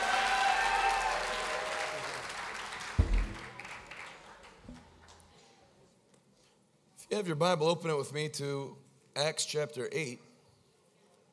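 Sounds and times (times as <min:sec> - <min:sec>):
audience applause: 0:00.0 - 0:04.6
scattered thuds: 0:03.0 - 0:03.6
speech: 0:07.1 - 0:10.3.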